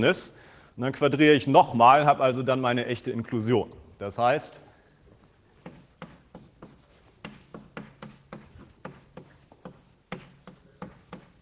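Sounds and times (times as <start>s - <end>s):
speech: 0.0s - 4.7s
writing on a board during a mathematics lecture: 5.5s - 11.3s.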